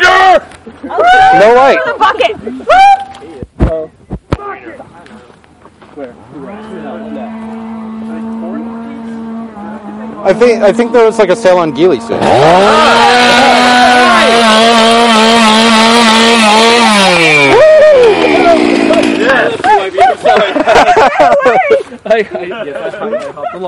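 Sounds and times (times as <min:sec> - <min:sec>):
laughter: 0:00.5 - 0:02.7, 0:17.6 - 0:23.6
speech: 0:01.4 - 0:02.8, 0:10.2 - 0:15.7, 0:20.8 - 0:23.6
erratic warbling noises: 0:06.2 - 0:19.9
chainsaw revving: 0:06.3 - 0:19.8.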